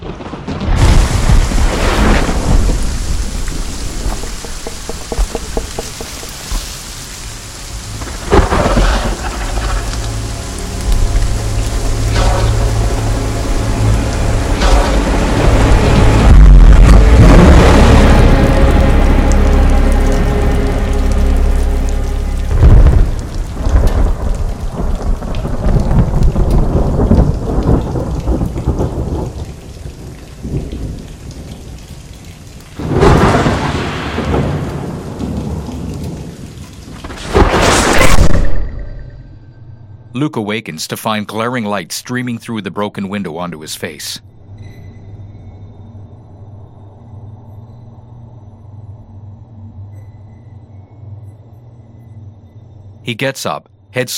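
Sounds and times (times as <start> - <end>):
deep rumbling thunder: 0.0 - 6.7, 7.9 - 19.3, 22.5 - 31.8, 32.8 - 39.2
steady rain spattering during a nighttime thunderstorm around a dwelling: 0.0 - 38.6, 40.1 - 44.6, 50.6 - 54.1
speech: 40.2 - 44.3, 53.0 - 54.1.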